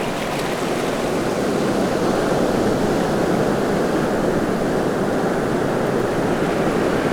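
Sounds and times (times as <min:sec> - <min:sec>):
ocean surf on coastal rocks close: 0:00.0 - 0:07.0.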